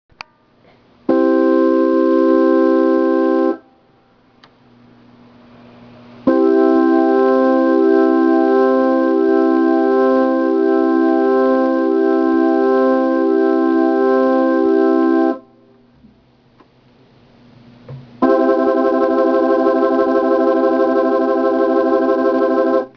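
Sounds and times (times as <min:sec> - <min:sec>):
organ through Leslie rotating speaker: 0:01.1 - 0:03.7, 0:06.2 - 0:15.5, 0:18.2 - 0:22.9.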